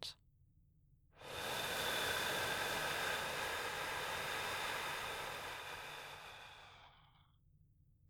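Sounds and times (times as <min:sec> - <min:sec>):
slow breathing in and out: 0:01.2 - 0:07.6.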